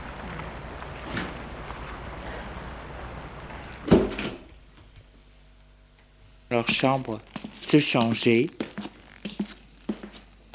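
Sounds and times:
quiet hum: 0:00.0 - 0:10.5
hotel door shutting with a firm thud: 0:03.8 - 0:04.5
speech: 0:06.5 - 0:08.9.

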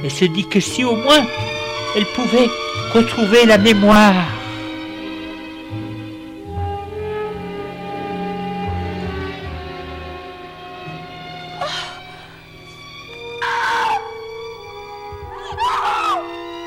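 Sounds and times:
speech: 0:00.0 - 0:04.4
sustained droning music: 0:00.0 - 0:16.6
anguished screaming: 0:13.2 - 0:14.5, 0:15.3 - 0:16.4.

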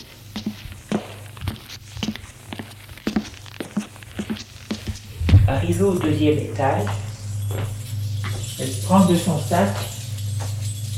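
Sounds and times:
footsteps climbing worn stone stairs in a narrow dirty passage: 0:00.0 - 0:10.6
speech: 0:05.5 - 0:07.0, 0:08.6 - 0:09.9.

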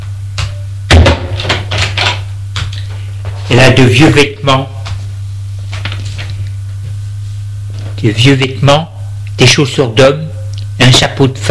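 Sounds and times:
low electrical hum: 0:00.0 - 0:11.5
bedroom door thump: 0:00.9 - 0:01.7
speech: 0:03.5 - 0:04.8, 0:08.0 - 0:11.5.

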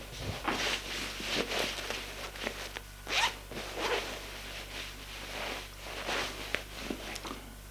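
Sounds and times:
low steady hum: 0:00.0 - 0:07.6
clothing zipper rasping as a woman undresses: 0:03.1 - 0:04.1.

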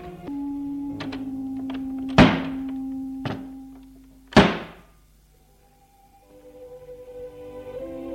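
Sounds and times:
steady low tone: 0:00.0 - 0:08.1
door slamming on a town street at night: 0:01.0 - 0:03.6, 0:04.3 - 0:04.8.

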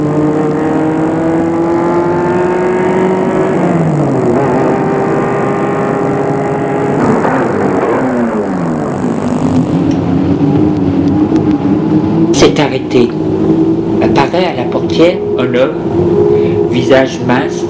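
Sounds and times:
car engine humming as the car approaches and drives on: 0:00.0 - 0:17.6
speech: 0:14.9 - 0:16.2, 0:16.8 - 0:17.6.

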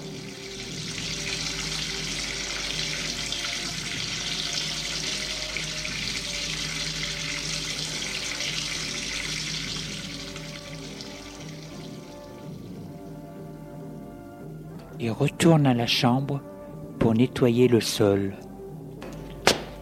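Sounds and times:
water running from a tap into a bucket: 0:00.0 - 0:13.2
speech: 0:15.0 - 0:16.5, 0:17.2 - 0:18.4.

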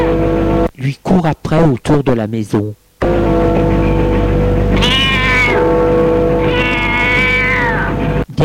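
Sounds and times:
steady low hum: 0:00.0 - 0:08.3
speech: 0:00.8 - 0:03.8
cat meowing with drawn-out wavering cries: 0:04.7 - 0:05.6, 0:06.4 - 0:08.0.

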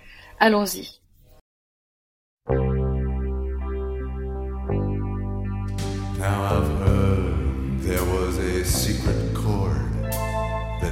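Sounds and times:
speech: 0:00.4 - 0:01.0
instrumental song intro with chorus-like wavering effect: 0:02.5 - 0:10.8.

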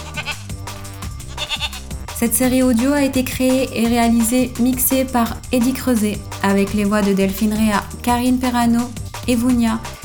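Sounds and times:
sheep bleating: 0:00.0 - 0:00.4, 0:01.3 - 0:01.9
speech: 0:01.5 - 0:09.9.

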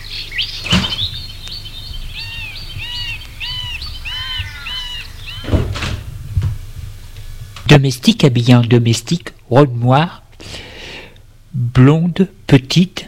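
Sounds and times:
birds chirping and tweeting: 0:00.0 - 0:07.4
double French door of a house opening and closing: 0:00.6 - 0:06.6
speech: 0:07.7 - 0:10.2, 0:11.8 - 0:13.0.

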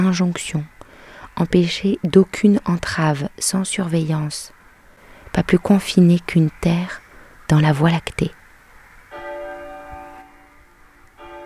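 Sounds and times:
speech: 0:00.0 - 0:00.8, 0:01.4 - 0:04.6, 0:05.3 - 0:08.4
church bells ringing at noon: 0:09.1 - 0:11.4.

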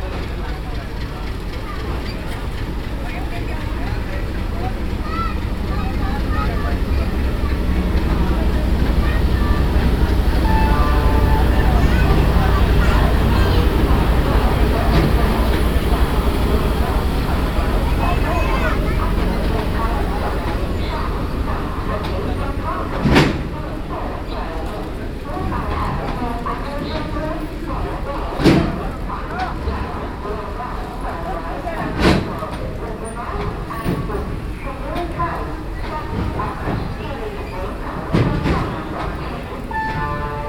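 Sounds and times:
deep engine-like rumble at a railway station: 0:00.0 - 0:25.0
crowd chatter on a railway station platform: 0:00.0 - 0:40.4.

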